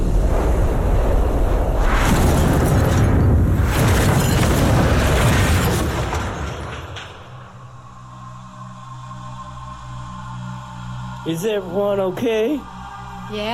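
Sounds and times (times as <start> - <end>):
bombs exploding across a city: 0.0 - 7.5
speech: 11.3 - 12.7, 13.3 - 13.5.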